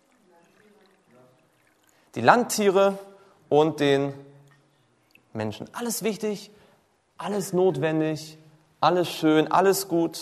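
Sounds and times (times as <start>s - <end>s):
water poured into a chalice: 0.0s - 2.6s, 4.5s - 5.4s
speech: 2.1s - 4.3s, 5.3s - 6.6s, 7.2s - 10.2s.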